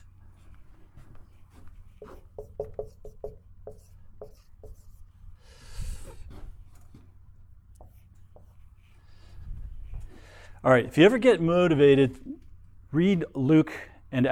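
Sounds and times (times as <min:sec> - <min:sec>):
dry erase marker writing on a whiteboard during a class: 0:01.6 - 0:05.0
speech: 0:02.0 - 0:03.4, 0:10.6 - 0:12.3, 0:12.9 - 0:14.3.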